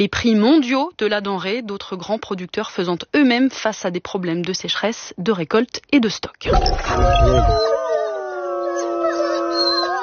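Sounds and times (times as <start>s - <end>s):
speech: 0.0s - 8.0s
wolves howling in a chorus: 6.8s - 10.0s.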